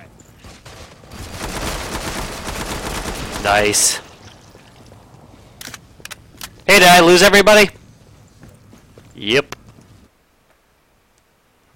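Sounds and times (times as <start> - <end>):
video game gunfire in rapid bursts: 0.4 - 4.2
speech: 3.4 - 4.0, 6.7 - 7.8, 9.2 - 9.6.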